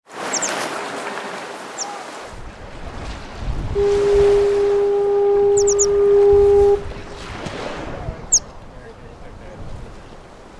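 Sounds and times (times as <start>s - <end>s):
American Pipit calling at Lake Superior: 0.3s - 0.6s, 5.4s - 6.2s, 8.3s - 8.5s
fog horn at Lake Superior: 3.6s - 7.2s.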